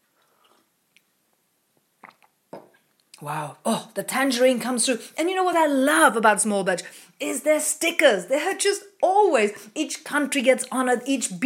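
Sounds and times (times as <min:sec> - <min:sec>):
person sipping orange bourbon coffee: 0:00.0 - 0:03.2
lip and mouth noises: 0:00.1 - 0:03.2
wet slurping clicks: 0:02.0 - 0:03.2
speech: 0:03.2 - 0:11.4.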